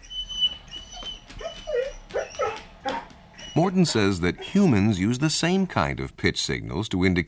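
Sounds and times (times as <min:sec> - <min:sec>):
dog whining as owner approaches: 0:00.0 - 0:04.8
speech: 0:03.6 - 0:07.2.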